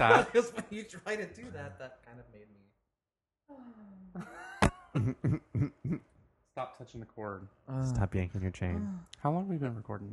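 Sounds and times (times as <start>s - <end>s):
speech: 0.0s - 2.7s, 3.5s - 10.1s
voice imitating a hacking cough: 4.6s - 6.0s.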